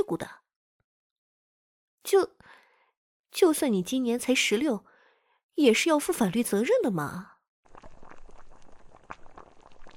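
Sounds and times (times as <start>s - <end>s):
speech: 0.0s - 0.4s, 2.0s - 2.6s, 3.4s - 4.9s, 5.6s - 7.3s
soup boiling in a pot: 7.7s - 9.9s.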